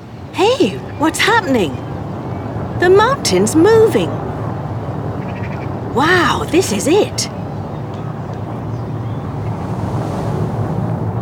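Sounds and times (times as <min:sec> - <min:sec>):
strong wind blowing near a volcano: 0:00.0 - 0:11.2
speech: 0:00.4 - 0:01.9, 0:02.8 - 0:04.2, 0:06.0 - 0:07.4.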